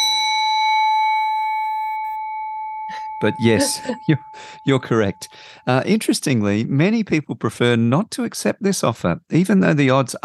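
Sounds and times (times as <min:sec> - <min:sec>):
bell strike ringing: 0:00.0 - 0:05.8
speech: 0:03.2 - 0:10.2.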